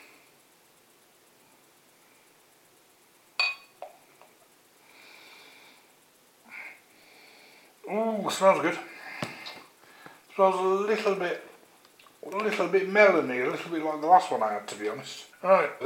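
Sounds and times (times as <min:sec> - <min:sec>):
sharp glass clink: 0:03.4 - 0:04.0
speech: 0:07.9 - 0:08.9, 0:10.4 - 0:11.5, 0:12.3 - 0:15.8.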